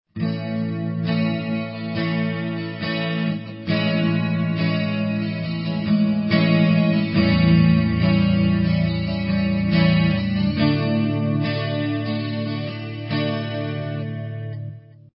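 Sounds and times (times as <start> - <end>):
guitar playing A Amaj7 A7 D chords: 0.1 - 15.1.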